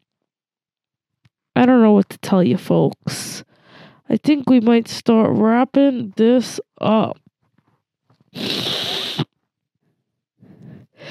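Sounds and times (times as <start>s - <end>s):
speech: 1.6s - 3.5s, 4.1s - 7.2s, 8.4s - 8.6s
loud human sneeze: 8.4s - 9.3s.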